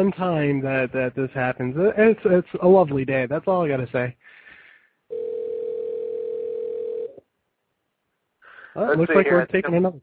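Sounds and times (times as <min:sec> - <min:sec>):
speech: 0:00.0 - 0:04.4, 0:08.8 - 0:10.0
telephone dial tone while calling a caller back: 0:05.1 - 0:07.2.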